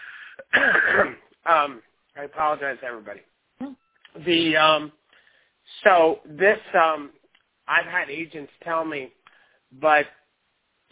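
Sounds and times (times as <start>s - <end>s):
person giving a raspy cough turning into throat clearing: 0.3s - 1.3s
speech: 0.4s - 5.0s, 5.8s - 10.2s.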